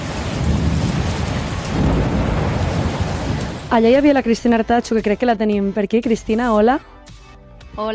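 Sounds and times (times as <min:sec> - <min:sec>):
heavy rain in a violent late-summer downpour in the Camp de Tarragona: 0:00.0 - 0:05.4
deep thunder rumbling: 0:00.0 - 0:05.7
speech: 0:03.7 - 0:06.9, 0:07.8 - 0:07.9.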